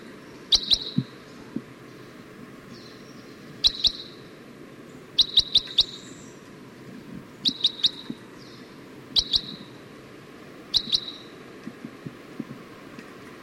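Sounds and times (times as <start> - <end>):
female type 1 red crossbill short clipped calls: 0.0 - 2.1, 2.7 - 4.3, 5.0 - 6.4, 7.2 - 9.8, 10.6 - 12.2
low background hiss: 0.0 - 13.4.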